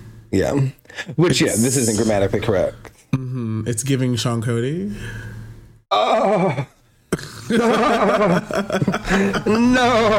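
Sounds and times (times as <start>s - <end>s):
speech: 0.3s - 5.3s, 5.9s - 10.1s
person imitating a horse whinny: 5.9s - 6.7s
laughter: 7.5s - 10.1s.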